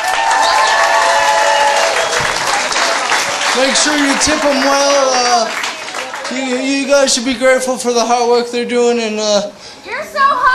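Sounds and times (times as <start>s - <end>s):
room full of people applauding: 0.0s - 7.1s
speech: 3.6s - 5.6s, 6.3s - 10.5s.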